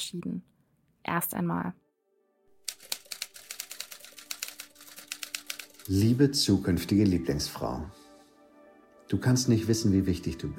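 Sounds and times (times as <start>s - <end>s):
speech: 0.0s - 1.8s, 5.9s - 8.0s, 9.1s - 10.5s
typewriter keys clattering: 2.6s - 6.1s.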